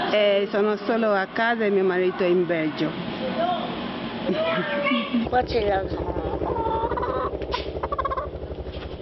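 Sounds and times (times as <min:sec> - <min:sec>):
speech: 0:00.1 - 0:03.0, 0:04.3 - 0:06.1
hen cackling after laying an egg: 0:06.4 - 0:08.3.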